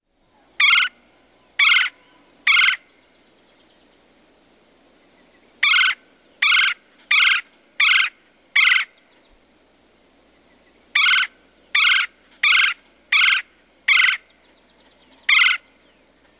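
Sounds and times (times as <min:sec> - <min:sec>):
Red-bellied Woodpecker calling with harsh rolling churr notes in the Chicago region: 0:00.6 - 0:01.0, 0:01.6 - 0:02.9, 0:05.6 - 0:09.0, 0:11.0 - 0:15.7.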